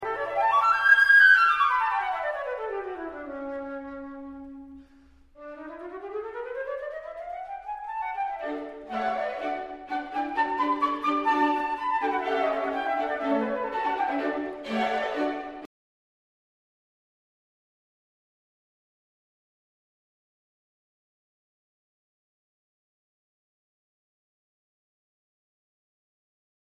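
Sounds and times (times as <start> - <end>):
flute: 0.0 - 15.7.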